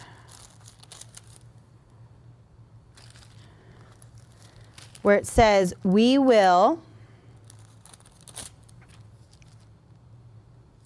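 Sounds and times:
stiff water-damaged Bible pages crinkling as they are turned: 0.0 - 1.5, 2.9 - 5.9, 7.4 - 9.7
low steady hum: 0.0 - 10.8
speech: 5.0 - 6.9.

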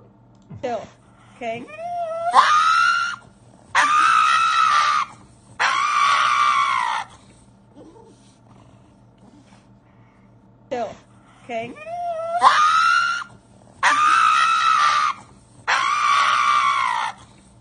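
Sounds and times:
speech: 0.6 - 2.7
dog screaming like a human: 1.7 - 7.2, 11.8 - 17.4.

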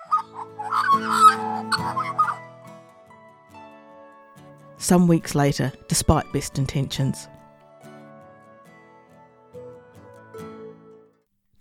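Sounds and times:
birds calling on a golf course: 0.0 - 2.6
speech: 4.8 - 7.4.

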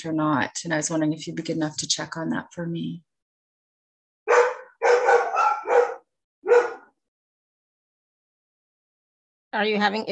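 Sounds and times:
speech: 0.0 - 3.1, 9.5 - 10.1
badly behaved dog barking loudly: 4.3 - 7.0.

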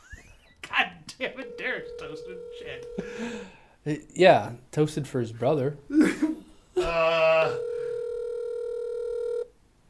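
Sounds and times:
speech: 1.2 - 7.7
telephone tone signaling an incoming call: 1.4 - 3.1, 7.4 - 9.5.

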